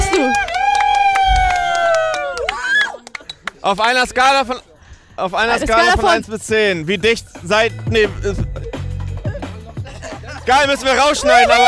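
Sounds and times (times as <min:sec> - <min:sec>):
small crowd cheering with a long sustained whoop: 0:00.0 - 0:03.4, 0:11.0 - 0:11.6
scattered hand claps: 0:00.0 - 0:03.6
speech: 0:03.6 - 0:08.6, 0:10.4 - 0:11.6
laughter: 0:08.2 - 0:11.6.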